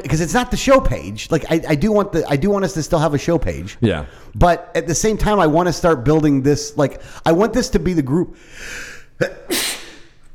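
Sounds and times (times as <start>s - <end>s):
speech: 0.0s - 9.8s
person sneezing: 9.2s - 10.3s.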